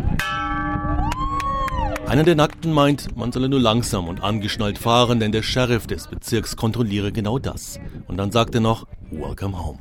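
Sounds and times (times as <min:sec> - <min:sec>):
metal bell struck at a festival entrance gate in the Nevada desert: 0:00.2 - 0:01.2
speech: 0:02.1 - 0:09.7.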